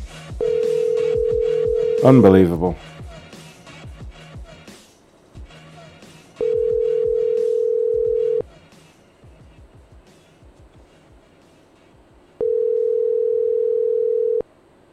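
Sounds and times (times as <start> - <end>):
phone call ringback tone: 0.4 - 2.7, 6.4 - 8.4, 12.4 - 14.5
speech: 2.0 - 2.9.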